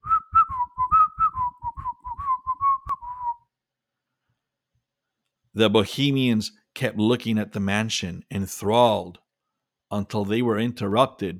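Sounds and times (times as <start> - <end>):
man whistling a lively tarantella tune while walking: 0.0 - 3.5
speech: 5.6 - 9.2, 9.9 - 11.3.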